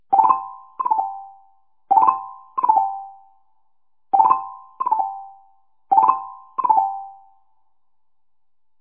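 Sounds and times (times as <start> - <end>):
chime: 0.1 - 3.4, 4.2 - 7.5
xylophone: 0.1 - 3.4, 4.2 - 7.4.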